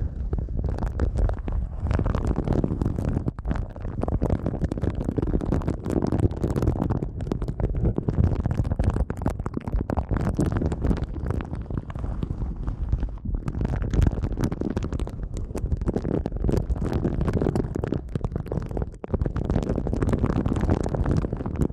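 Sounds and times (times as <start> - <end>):
muffled rubbing and massaging over the ear: 0.0 - 6.8, 9.9 - 21.7
dense low rumble: 0.0 - 21.7
quick scratchy strokes and crackles: 0.0 - 21.7.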